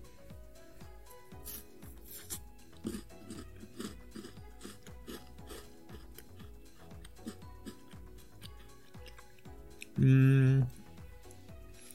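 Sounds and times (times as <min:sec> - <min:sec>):
crunching and chewing a chocolate biscuit being taste-tested: 0:02.0 - 0:10.7
speech: 0:10.0 - 0:10.3.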